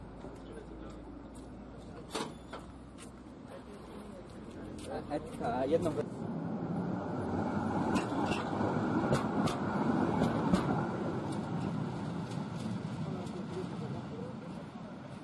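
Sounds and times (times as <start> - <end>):
historic tram rumbling on rails in Warsaw: 0.0 - 15.2
tram's metallic clicks and squeals on rails: 2.1 - 2.8.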